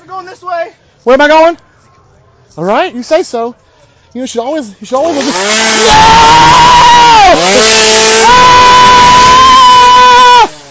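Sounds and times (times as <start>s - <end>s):
speech: 0.1s - 1.6s, 2.6s - 8.9s
chainsaw engine revving in a maze: 5.0s - 10.6s.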